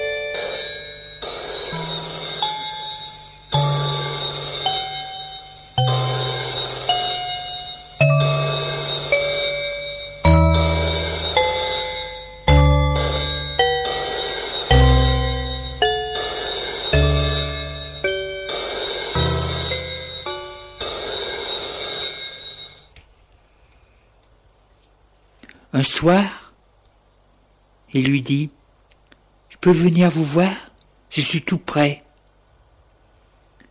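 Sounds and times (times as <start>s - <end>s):
telephone ringing with bright bell-like tones: 0.0s - 23.0s
speech: 26.0s - 26.3s, 27.9s - 28.6s, 29.6s - 32.0s.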